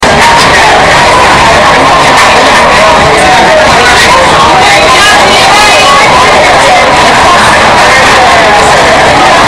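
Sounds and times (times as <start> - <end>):
loud crowd noise: 0.0 - 9.4.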